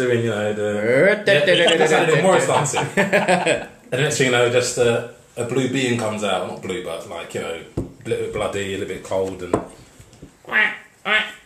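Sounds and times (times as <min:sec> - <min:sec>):
speech: 0:00.0 - 0:09.8, 0:10.5 - 0:11.3
loud nasal quacks: 0:01.4 - 0:02.0, 0:10.5 - 0:11.4
laughter: 0:01.4 - 0:03.8.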